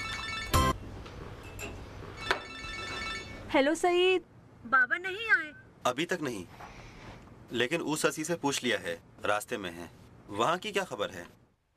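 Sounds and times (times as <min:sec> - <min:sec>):
mobile phone ringtone with bright harmonic chimes: 0:00.0 - 0:00.8, 0:02.2 - 0:03.5
speech: 0:03.5 - 0:06.7, 0:07.5 - 0:11.4.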